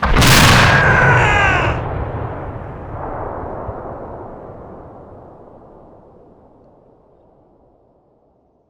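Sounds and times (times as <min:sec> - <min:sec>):
infantry soldier death cry: 0:00.2 - 0:01.9.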